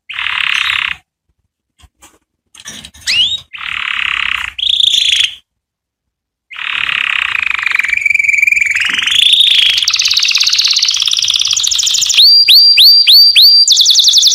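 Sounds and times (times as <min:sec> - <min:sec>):
canary song of fast buzzy rolls and trills: 0:00.0 - 0:01.1, 0:03.0 - 0:05.5, 0:06.5 - 0:14.3.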